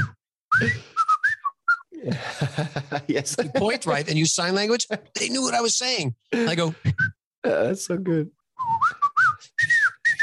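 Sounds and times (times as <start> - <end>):
circus performer whistling a short signal call: 0.0 - 1.9, 8.6 - 10.2
speech: 0.6 - 0.9, 2.0 - 8.4
laughter: 2.0 - 5.5.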